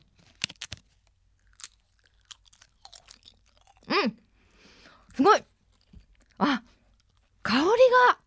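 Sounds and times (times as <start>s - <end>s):
dried nori seaweed from Fukuoka on the Ariake Sea being bitten: 0.3s - 0.8s, 1.4s - 3.9s
crackles of chewing dried nori seaweed: 1.4s - 3.9s, 5.6s - 7.4s
speech: 5.2s - 5.5s.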